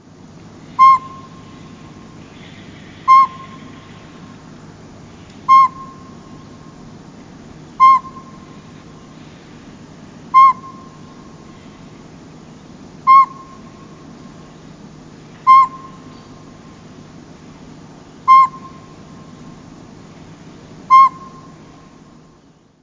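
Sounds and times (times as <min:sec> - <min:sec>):
low constant hum: 0:00.0 - 0:22.8
northern pygmy owl giving single whistled toots: 0:00.7 - 0:01.8, 0:03.0 - 0:04.0, 0:05.5 - 0:06.5, 0:07.8 - 0:08.6, 0:10.3 - 0:11.3, 0:13.0 - 0:13.9, 0:15.4 - 0:16.4, 0:18.3 - 0:19.0, 0:20.9 - 0:21.8.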